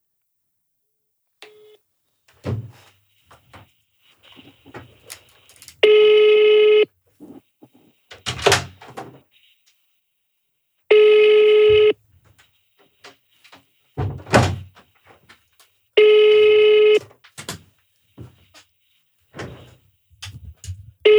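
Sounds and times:
telephone ringing tone: 1.4 - 1.8, 5.3 - 6.9, 10.9 - 12.0, 16.0 - 17.0.

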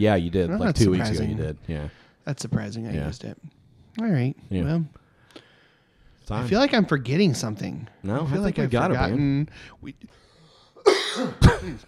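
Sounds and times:
speech: 0.0 - 5.0, 6.3 - 10.2, 10.8 - 11.8
single loud harsh cough: 10.8 - 11.8.

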